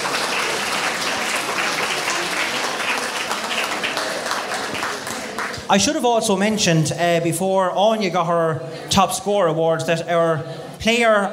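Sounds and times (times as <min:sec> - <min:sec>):
audience applauding at an evening camogie awards event: 0:00.0 - 0:05.7
speech: 0:05.7 - 0:11.3.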